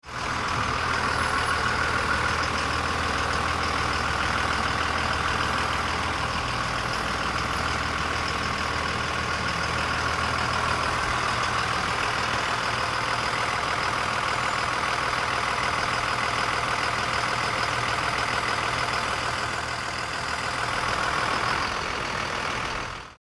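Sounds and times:
delivery panel truck idling: 0.0 - 23.2.

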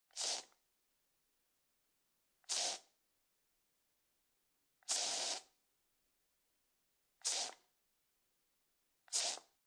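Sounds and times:
short aerosol can sprays: 0.1 - 0.6, 2.4 - 2.9, 4.9 - 5.5, 7.2 - 7.6, 9.1 - 9.6.

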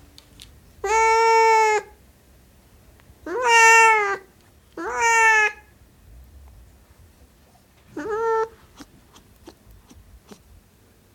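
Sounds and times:
Siamese cat wailing meows: 0.8 - 1.9, 3.2 - 5.7, 7.9 - 8.9.

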